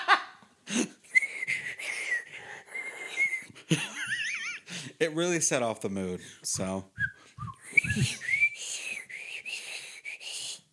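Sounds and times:
person imitating whistling with their mouth: 1.1s - 3.5s, 7.0s - 10.6s
speech: 3.7s - 3.9s, 5.0s - 7.0s, 8.0s - 8.3s
breathy low thumps: 6.6s - 8.4s.

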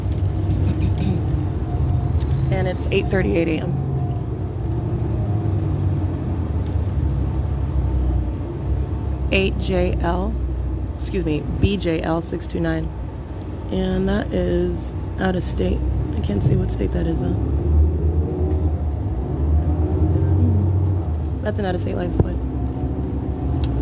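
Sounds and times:
bus engine rumbling while driving northbound: 0.0s - 23.8s
speech: 2.6s - 3.8s, 9.3s - 10.4s, 11.0s - 13.0s, 13.7s - 17.7s, 21.5s - 22.4s.

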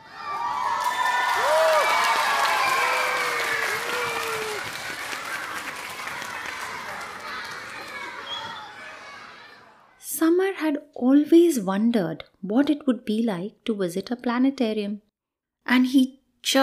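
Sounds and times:
crowd of children cheering, shouting and whooping excitedly: 0.0s - 10.0s
clapping-like noise: 0.7s - 8.6s
speech: 11.2s - 15.0s, 15.7s - 16.6s.

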